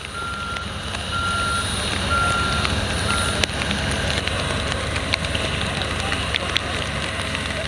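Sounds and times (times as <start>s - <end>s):
warning beeps: 0.0s - 3.5s
airplane engine roaring while parking on an airport apron: 0.0s - 7.6s
rain on an airport apron: 0.0s - 7.6s.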